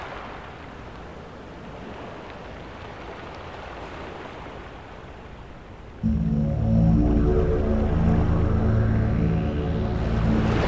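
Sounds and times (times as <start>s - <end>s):
relaxation and meditation music: 6.1s - 10.6s.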